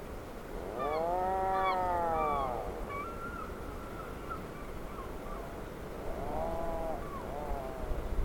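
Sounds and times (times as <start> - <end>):
background noise: 0.0 - 8.2
Atlantic puffin deep moaning call: 0.6 - 2.8, 6.1 - 8.0.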